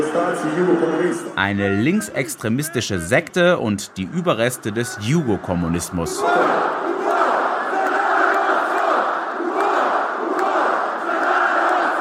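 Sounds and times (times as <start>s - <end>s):
speech: 0.0s - 6.7s
large football crowd roaring a chanted battle cry: 3.8s - 11.9s.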